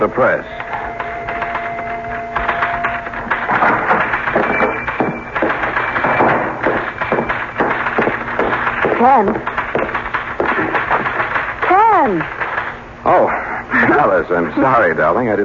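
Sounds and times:
speech: 0.0s - 0.6s, 9.0s - 9.5s, 14.1s - 15.4s
low hum: 0.0s - 14.9s
typewriter keys clacking at a newspaper: 0.6s - 12.8s.

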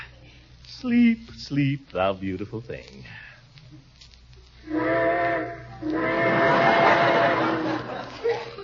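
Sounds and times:
speech: 0.9s - 3.3s
steam train whistle: 4.6s - 7.8s
laughter: 6.3s - 8.6s.

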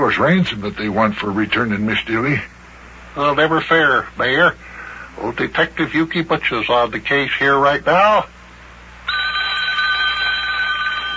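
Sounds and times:
speech: 0.0s - 2.5s, 3.2s - 8.4s
telephone bell ringing: 9.1s - 11.1s.

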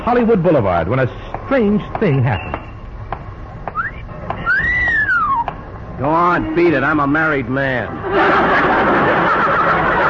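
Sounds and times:
speech: 0.0s - 2.6s, 6.0s - 8.8s
low rumble: 0.0s - 10.0s
person giving a two-part whistle at someone: 3.7s - 5.5s
laughter: 7.8s - 10.0s.

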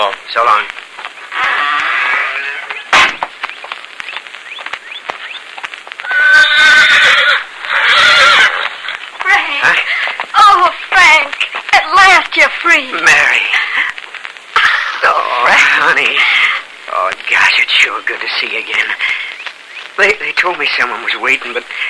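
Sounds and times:
horse hooves clopping and stamping: 0.0s - 21.8s
speech: 0.3s - 0.8s, 20.7s - 21.8s
horse whinnying outside a prison gate: 1.3s - 2.9s, 6.0s - 8.9s.

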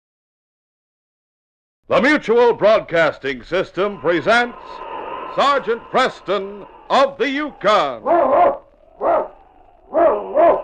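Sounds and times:
speech: 1.9s - 8.6s
husky sled lead dog barking: 7.6s - 10.6s.

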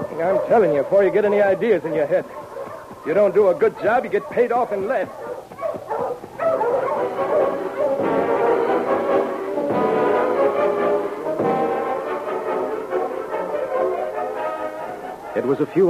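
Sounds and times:
pack of husky sled dogs barking and yipping: 0.0s - 15.8s
speech: 0.2s - 2.4s, 3.0s - 6.6s, 15.4s - 15.8s.

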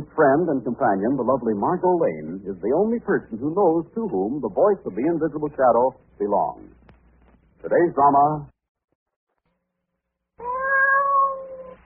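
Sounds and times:
speech: 0.1s - 6.8s, 7.6s - 8.5s
cat meowing: 10.4s - 11.8s.

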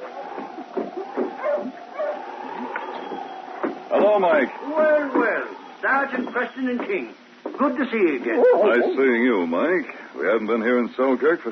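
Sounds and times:
sled dog team yipping, barking and whining: 0.0s - 3.8s, 8.3s - 9.2s
steady noise: 0.0s - 11.5s
speech: 4.0s - 11.5s.

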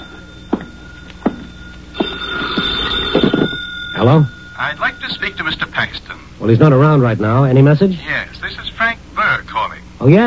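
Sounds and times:
telephone ringing in an office: 0.0s - 7.4s
speech: 4.0s - 8.6s, 10.0s - 10.2s.

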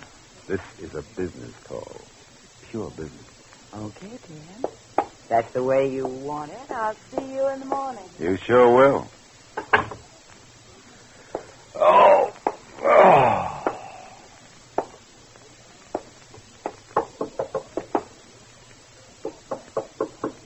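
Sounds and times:
speech: 0.5s - 9.8s
drawn-out creaking moan: 11.7s - 14.2s
knocking on the front door of an apartment: 16.6s - 18.1s, 19.2s - 20.4s.

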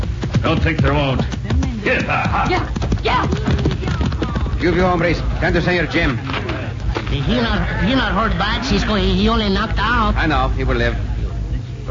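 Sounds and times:
horse hooves clip-clopping: 0.0s - 7.2s
speech: 0.4s - 3.5s, 4.6s - 6.4s, 7.1s - 11.1s
laughter: 1.8s - 2.8s, 3.4s - 9.8s.

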